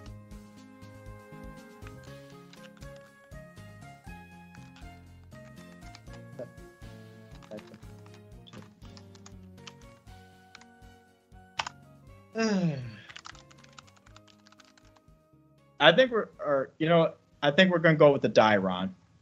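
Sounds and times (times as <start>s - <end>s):
typing on a computer keyboard: 5.7s - 6.2s, 7.4s - 9.8s, 13.1s - 15.0s
person vocalizing: 12.3s - 13.2s
speech: 12.4s - 12.8s, 15.8s - 19.0s.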